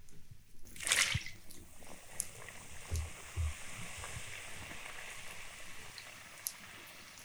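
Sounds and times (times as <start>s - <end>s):
egg-yolk pastries deep-frying in hot fat: 0.6s - 7.2s
soft low bumps: 2.9s - 3.8s.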